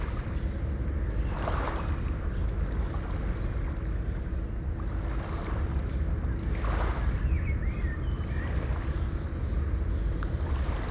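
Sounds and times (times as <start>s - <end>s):
distant water in daytime: 0.0s - 10.8s.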